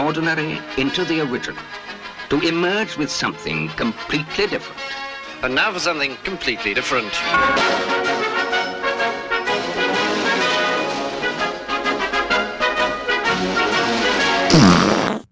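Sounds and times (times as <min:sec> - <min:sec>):
speech: 0:00.0 - 0:08.0
brassy march music: 0:07.3 - 0:14.5
loud raspy fart sound effect: 0:14.5 - 0:15.3.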